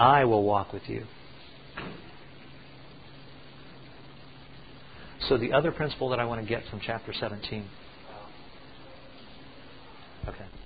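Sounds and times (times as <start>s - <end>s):
speech: 0.0s - 1.2s, 5.3s - 7.8s
faint room noise: 0.0s - 10.6s
steady low hum: 0.0s - 10.6s
door shutting: 1.7s - 2.1s.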